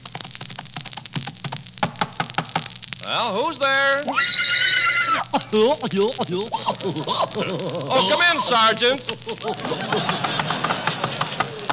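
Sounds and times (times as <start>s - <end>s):
speech: 3.1s - 4.4s, 5.2s - 10.3s
horse whinny: 4.1s - 5.3s
laughter: 5.1s - 11.7s.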